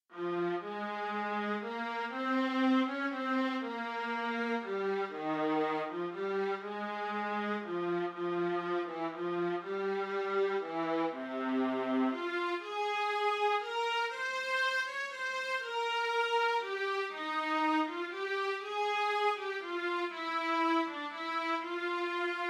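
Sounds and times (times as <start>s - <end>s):
alto playing a folk tune: 0.1s - 22.4s.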